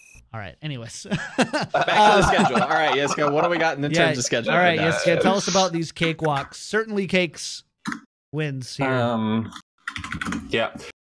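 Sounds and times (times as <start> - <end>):
speech: 0.3 - 11.0
laughter: 1.1 - 5.6
typing on a computer keyboard: 9.9 - 10.6.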